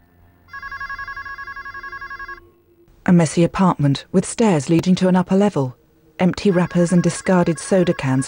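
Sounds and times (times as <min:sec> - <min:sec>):
telephone ringing with a bright electronic trill in a messy apartment: 0:00.5 - 0:02.6, 0:06.2 - 0:08.2
speech: 0:03.1 - 0:08.2.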